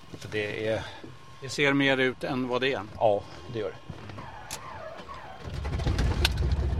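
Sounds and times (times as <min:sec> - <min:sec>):
thin whining tones: 0:00.0 - 0:05.7
speech: 0:00.2 - 0:04.0
small aircraft engine starting up: 0:04.3 - 0:06.7.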